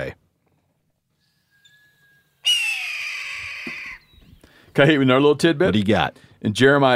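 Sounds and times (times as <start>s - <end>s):
red-tailed hawk raspy territorial scream: 2.4s - 4.1s
speech: 4.8s - 6.9s.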